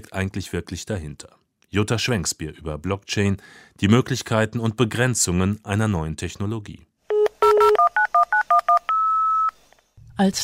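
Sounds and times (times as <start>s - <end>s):
speech: 0.1s - 6.9s, 10.2s - 10.4s
telephone dialing tones from a dial-up modem connection: 7.1s - 9.6s.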